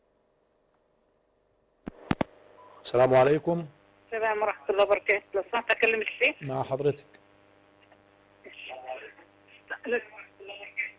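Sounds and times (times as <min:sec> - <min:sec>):
faint steady telephone line hum: 0:00.0 - 0:10.9
television voices in the background of a telephone line: 0:02.0 - 0:10.9
speech: 0:02.9 - 0:07.1, 0:09.8 - 0:10.2.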